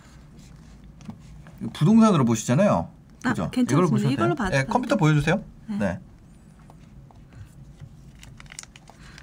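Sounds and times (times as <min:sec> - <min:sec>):
low hum: 0:00.0 - 0:09.2
speech: 0:01.6 - 0:06.1
mastic wrapper being peeled open: 0:08.0 - 0:09.2.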